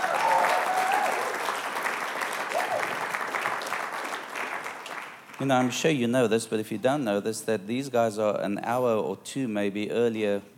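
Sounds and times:
faint whoops and cheers: 0.0 - 1.4, 2.4 - 3.1
crowd applauding: 0.0 - 5.8
speech: 5.4 - 10.5.

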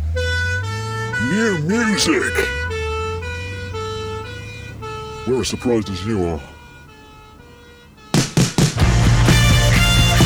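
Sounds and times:
loud two-tone ambulance siren wailing: 0.0 - 10.2
low engine rumble: 0.0 - 10.2
speech: 1.3 - 2.6, 5.3 - 6.5.

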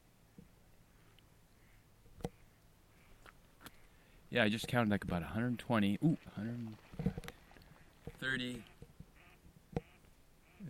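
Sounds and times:
speech: 4.3 - 7.1, 8.2 - 8.7
ducks quacking, possibly mallards: 8.2 - 10.6.

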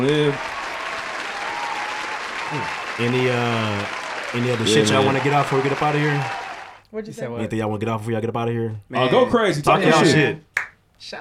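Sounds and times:
speech: 0.0 - 0.6, 2.5 - 11.1
crowd applauding: 0.0 - 6.8.

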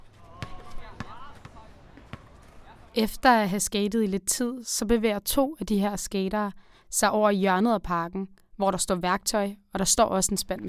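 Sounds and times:
basketball bouncing on a hard court: 0.0 - 2.9
speech: 3.0 - 10.6.

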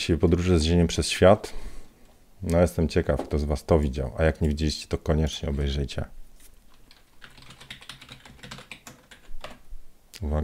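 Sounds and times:
speech: 0.0 - 1.7, 2.4 - 6.2, 10.2 - 10.4
new computer keyboard typing: 6.7 - 9.6.

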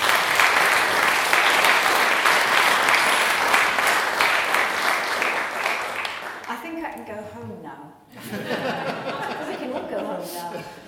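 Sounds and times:
large audience applauding: 0.0 - 6.6
laughter: 8.1 - 10.8.

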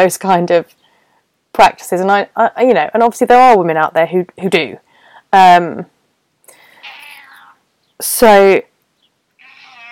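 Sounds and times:
speech: 0.0 - 0.8, 1.5 - 5.9, 8.0 - 8.7
pet cat meowing: 6.8 - 7.6, 9.4 - 9.9.

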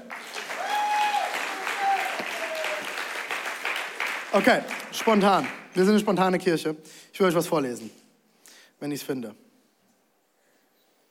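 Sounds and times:
room full of people applauding: 0.0 - 5.6
speech: 4.4 - 8.0, 8.8 - 9.4.

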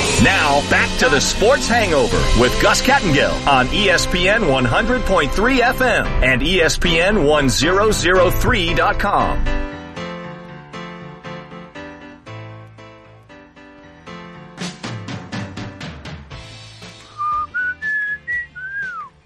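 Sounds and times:
bright rhythmic music bed: 0.0 - 19.2
speech: 0.2 - 9.6
person whistling a short clear tune: 17.0 - 19.2.

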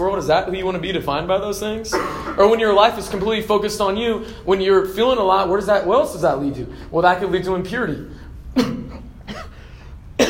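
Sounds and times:
speech: 0.0 - 8.8
low noise: 0.0 - 10.2
harsh coughs: 1.9 - 2.5, 8.5 - 10.2.

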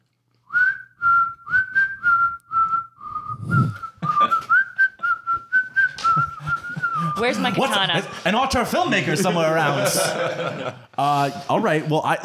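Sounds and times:
person whistling a signal tune: 0.5 - 7.7
laughter: 4.0 - 5.2, 5.9 - 11.9
speech: 7.2 - 12.2.

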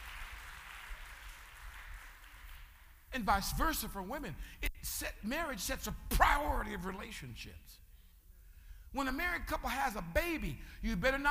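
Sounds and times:
women in a crowd clapping: 0.0 - 3.0
speech: 3.2 - 7.8, 8.9 - 11.2.

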